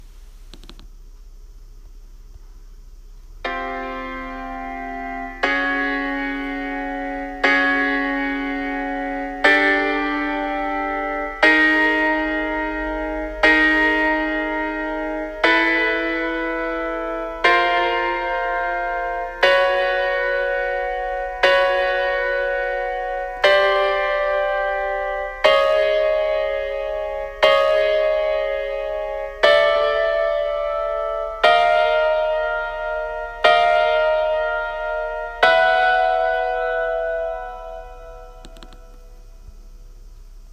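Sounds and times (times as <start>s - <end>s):
suspended fourth chord: 3.4s - 40.0s.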